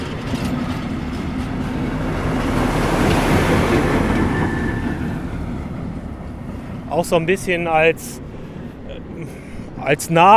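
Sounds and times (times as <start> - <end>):
locomotive passing near a waterside recreation area: 0.0 - 10.3
speech: 7.0 - 8.2, 9.8 - 10.3.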